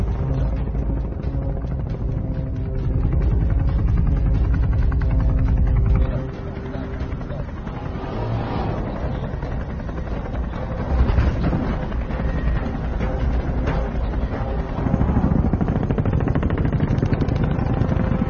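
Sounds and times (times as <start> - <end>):
helicopter rotor thrum: 0.0 - 18.2
faint voices: 5.0 - 12.3.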